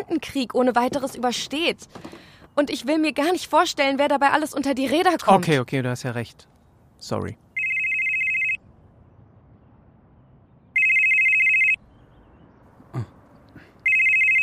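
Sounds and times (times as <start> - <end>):
speech: 0.0 - 7.4
telephone ringing with electronic bursts for an incoming call: 7.6 - 8.6, 10.8 - 11.8, 13.8 - 14.4.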